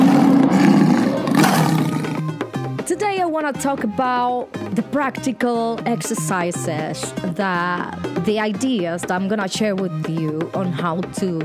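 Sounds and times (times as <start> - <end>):
deep rumbling roar: 0.0 - 2.4
speech: 3.3 - 11.4.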